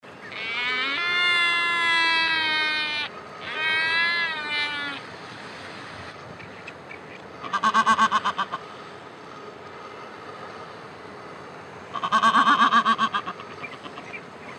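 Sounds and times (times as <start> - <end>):
black-browed albatross calling: 0.2 - 5.1, 6.4 - 8.7, 11.9 - 14.5.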